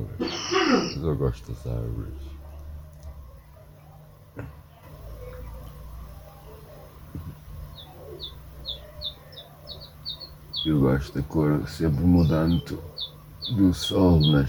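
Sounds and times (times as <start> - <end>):
birds chirping in trees including pigeons: 0.0 - 14.4
low steady hum: 0.0 - 14.4
speech: 1.0 - 2.4, 10.6 - 14.4.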